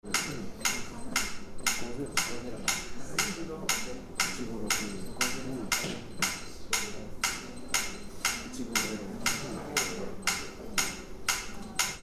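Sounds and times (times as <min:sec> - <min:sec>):
metronome ticking: 0:00.0 - 0:12.0.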